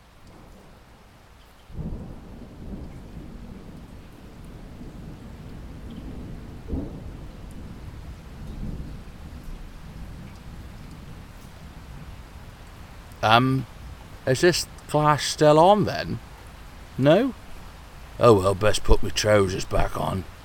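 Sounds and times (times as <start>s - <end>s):
rain pouring: 0.0s - 20.4s
thunder rumbling: 1.7s - 20.4s
speech: 13.2s - 13.7s, 14.3s - 16.3s, 17.0s - 17.4s, 18.2s - 20.4s.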